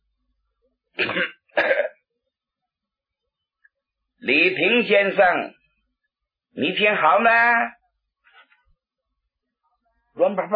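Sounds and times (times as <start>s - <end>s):
person coughing lightly: 1.0s - 2.0s
speech: 4.2s - 5.6s, 6.5s - 7.8s, 10.2s - 10.5s.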